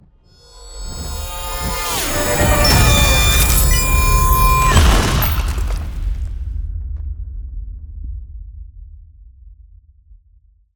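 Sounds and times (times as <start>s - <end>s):
ice spell explosion impact: 1.8s - 6.4s.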